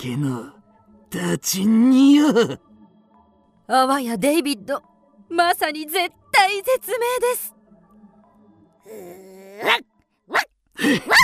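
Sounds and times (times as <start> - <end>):
speech: 0.0 - 2.7, 3.7 - 7.6, 8.8 - 11.2
puppy giving sharp high barks: 9.6 - 11.2.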